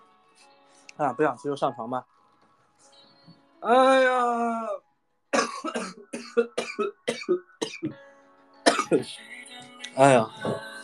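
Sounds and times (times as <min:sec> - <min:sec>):
speech: 0:01.0 - 0:02.2, 0:03.6 - 0:04.8, 0:05.6 - 0:08.1, 0:08.9 - 0:09.4, 0:10.0 - 0:10.7
person coughing in raspy bursts: 0:05.4 - 0:07.9, 0:08.6 - 0:09.0.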